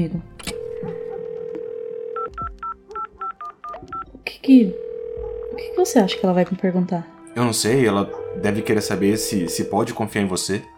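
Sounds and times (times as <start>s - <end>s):
speech: 0.0s - 0.3s, 4.5s - 4.8s, 5.7s - 10.7s
mobile phone keypad beeps: 0.4s - 4.2s, 8.1s - 10.0s
mobile phone dial tone: 0.5s - 2.4s, 4.7s - 6.2s, 8.1s - 10.0s.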